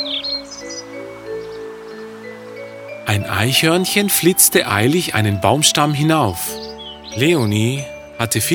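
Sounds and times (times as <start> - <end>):
birds chirping in trees: 0.0 - 8.5
speech: 3.1 - 6.6, 7.2 - 8.5.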